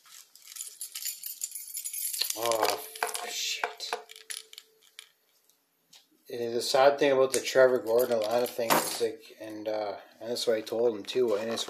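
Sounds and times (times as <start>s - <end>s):
keys being shaken: 0.0s - 5.1s
speech: 2.4s - 2.8s, 6.6s - 11.6s.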